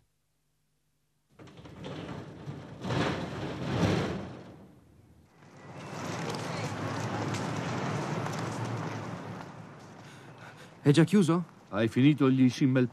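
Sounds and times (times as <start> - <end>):
metal shop shutter being pulled down: 1.3 - 8.2
speech: 10.8 - 12.9.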